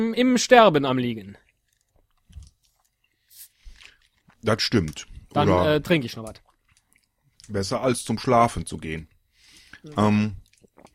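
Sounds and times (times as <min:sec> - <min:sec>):
speech: 0:00.0 - 0:01.4, 0:04.4 - 0:06.4, 0:07.5 - 0:09.1, 0:09.8 - 0:10.4
chewing food with crunchy bites and wet mouth sounds: 0:01.3 - 0:07.7, 0:09.5 - 0:10.9.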